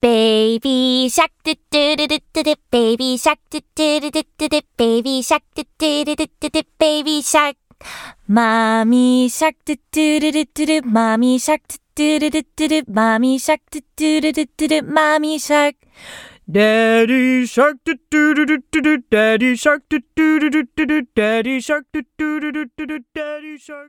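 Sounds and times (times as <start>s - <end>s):
woman singing English children's song: 0.0s - 23.8s.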